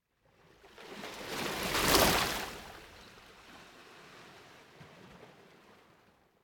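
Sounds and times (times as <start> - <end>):
gentle ocean water lapping on the coast: 0.6 - 6.2.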